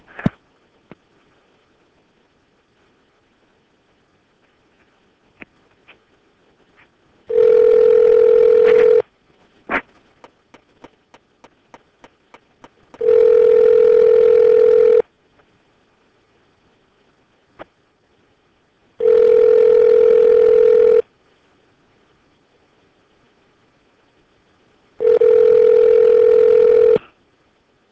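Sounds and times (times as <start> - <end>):
outgoing phone call ringback tones: 7.3 - 9.0, 13.0 - 15.0, 19.0 - 21.0, 25.0 - 27.0.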